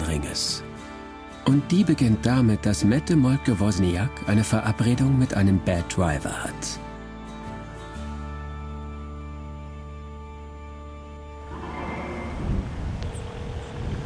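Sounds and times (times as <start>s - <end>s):
speech: 0.4s - 0.7s, 1.5s - 6.8s
low engine drone of a rented boat in Scarborough Harbor: 11.2s - 14.0s
gusty wind: 11.4s - 14.0s.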